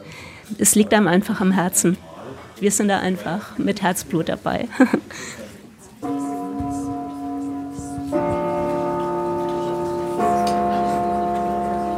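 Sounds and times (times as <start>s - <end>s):
speech: 0.6s - 5.4s
old three-key cinema gong chiming: 6.0s - 11.9s.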